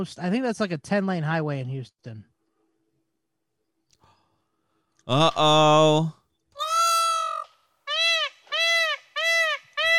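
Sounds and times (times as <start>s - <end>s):
speech: 0.0s - 2.3s, 5.1s - 6.2s
peacock call: 6.6s - 9.9s.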